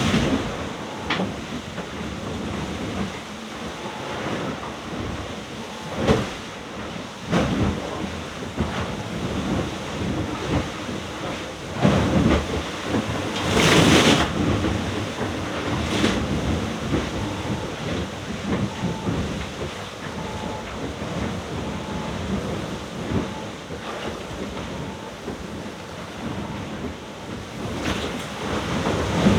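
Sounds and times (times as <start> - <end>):
gusting wind around a sailboat: 0.0 - 29.3
rough sea roar around a sailboat in the middle of the ocean: 0.0 - 29.3.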